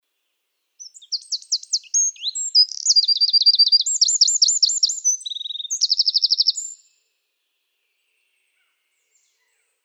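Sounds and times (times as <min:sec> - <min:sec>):
Eurasian wren singing: 0:00.8 - 0:06.8.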